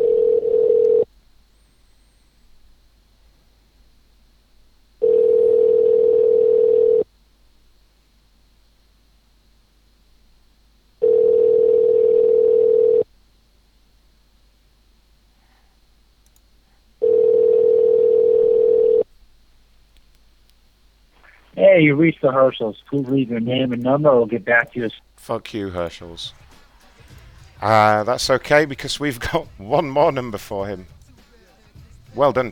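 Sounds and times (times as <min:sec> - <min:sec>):
ringback tone on a telephone line while a call connects: 0:00.0 - 0:01.1, 0:05.0 - 0:07.0, 0:11.0 - 0:13.0, 0:17.0 - 0:19.0
speech: 0:21.8 - 0:26.4, 0:27.6 - 0:31.0, 0:32.2 - 0:32.5.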